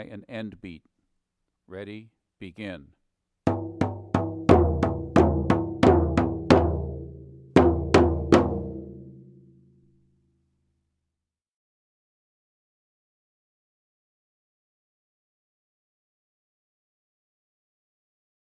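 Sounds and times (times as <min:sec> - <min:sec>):
lead drummer drum signal: 0:03.5 - 0:09.5.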